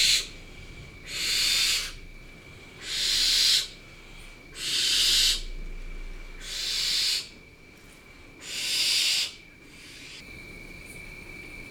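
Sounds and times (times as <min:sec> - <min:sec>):
barn owl giving harsh airy hissing screeches: 0:00.0 - 0:00.3, 0:01.0 - 0:02.1, 0:02.8 - 0:03.9, 0:04.5 - 0:05.6, 0:06.4 - 0:07.4, 0:08.4 - 0:10.2.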